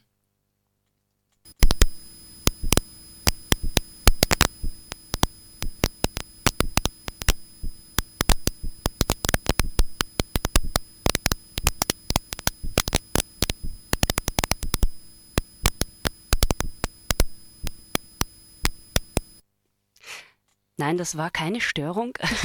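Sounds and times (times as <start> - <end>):
sharp dry clicks from drought-stressed trees: 1.5 - 19.4
steady electronic hum: 1.5 - 19.4
speech: 20.8 - 22.4.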